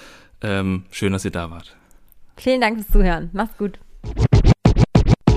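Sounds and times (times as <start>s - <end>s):
speech: 0.4s - 1.8s, 2.4s - 4.3s
DJ scratching a record: 4.0s - 5.2s.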